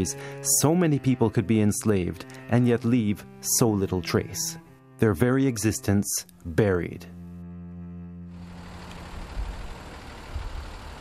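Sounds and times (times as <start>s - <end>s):
speech: 0.0s - 7.2s
moving bus rumble and road noise from inside: 8.3s - 10.9s.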